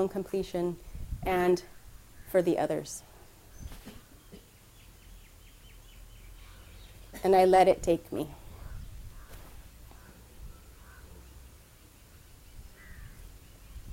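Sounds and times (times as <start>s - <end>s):
speech: 0.0s - 3.1s, 7.2s - 8.4s
crow cawing: 10.8s - 11.1s, 12.8s - 13.2s.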